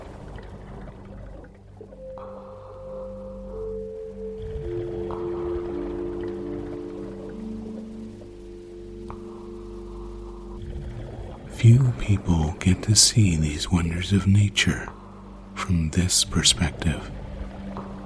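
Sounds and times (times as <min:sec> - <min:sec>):
humpback whale song underwater at the edge of a reef: 0:00.0 - 0:18.0
steady wash of water: 0:00.0 - 0:18.0
speech: 0:11.6 - 0:15.0, 0:15.7 - 0:17.2.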